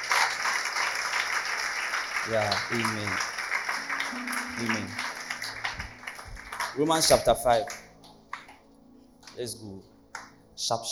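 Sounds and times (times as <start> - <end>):
audience clapping for facilitators: 0.0 - 8.6
speech: 2.3 - 3.3, 4.1 - 5.1, 6.8 - 7.8, 9.4 - 9.9, 10.6 - 10.8.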